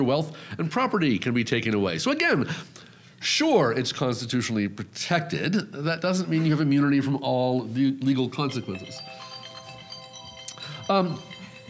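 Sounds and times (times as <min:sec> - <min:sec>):
speech: 0:00.0 - 0:09.2, 0:10.9 - 0:11.4
phone ringtone electronic melody: 0:08.4 - 0:11.6.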